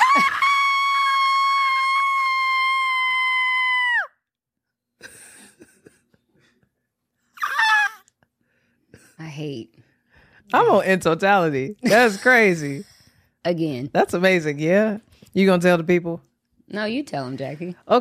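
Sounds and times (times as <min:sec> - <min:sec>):
person screaming excitedly: 0:00.0 - 0:04.1, 0:07.4 - 0:08.0
person shrieking: 0:00.0 - 0:04.1, 0:07.4 - 0:08.0
speech: 0:00.2 - 0:00.4, 0:10.5 - 0:17.9.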